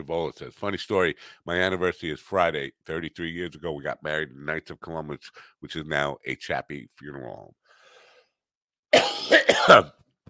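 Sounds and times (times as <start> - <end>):
speech: 0.0 - 7.6, 8.9 - 10.0
person coughing: 9.0 - 10.0
throat clearing: 9.0 - 10.0.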